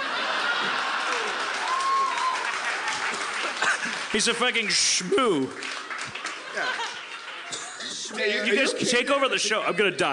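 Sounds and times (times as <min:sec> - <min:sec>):
laughter: 0:00.0 - 0:01.9, 0:05.2 - 0:10.1
crowd applause: 0:00.0 - 0:08.1
speech: 0:04.1 - 0:05.9, 0:06.6 - 0:07.0, 0:08.1 - 0:10.1.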